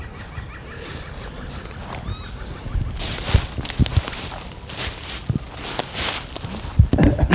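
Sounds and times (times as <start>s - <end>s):
faint birdsong in woodland: 0.0s - 6.8s
footsteps crunching through woodland undergrowth: 0.0s - 7.1s
leaves and twigs brushing and snapping underfoot: 1.5s - 7.1s.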